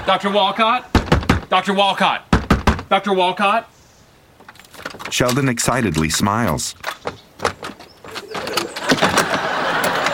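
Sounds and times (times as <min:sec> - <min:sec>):
laughter: 0:00.0 - 0:00.9, 0:08.4 - 0:10.1
speech: 0:00.1 - 0:02.3, 0:02.9 - 0:03.7, 0:05.1 - 0:07.5
knocking on a door: 0:01.0 - 0:01.5, 0:02.3 - 0:02.9.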